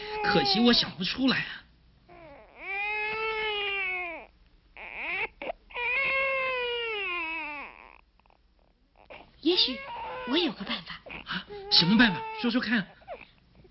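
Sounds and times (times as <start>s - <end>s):
baby crying loudly: 0.0s - 1.0s, 2.2s - 7.9s, 9.6s - 10.6s, 11.6s - 12.6s
speech: 0.2s - 1.6s, 9.6s - 13.0s.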